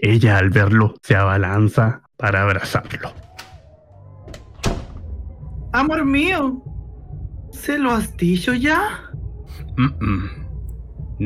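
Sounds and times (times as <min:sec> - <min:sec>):
speech: 0:00.0 - 0:03.2, 0:05.8 - 0:06.7, 0:07.6 - 0:09.1, 0:09.8 - 0:10.4
heavier thud of a swinging door: 0:02.9 - 0:05.2
door latch click: 0:03.2 - 0:03.6, 0:04.3 - 0:05.0.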